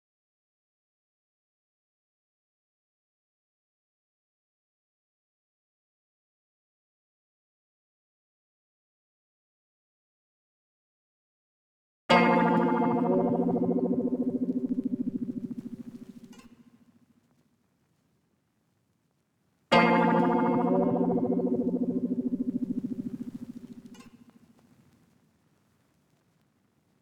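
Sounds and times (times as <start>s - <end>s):
126 BPM A sharp minor accent hit: 12.1s - 16.3s, 19.7s - 24.0s.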